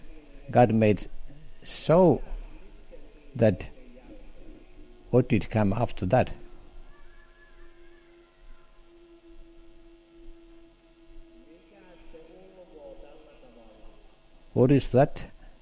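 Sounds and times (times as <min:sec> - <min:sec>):
constant noisy background: 0:00.0 - 0:15.5
speech: 0:00.5 - 0:02.3, 0:03.4 - 0:03.7, 0:05.1 - 0:06.4, 0:14.6 - 0:15.3
wolf howling: 0:06.1 - 0:12.6.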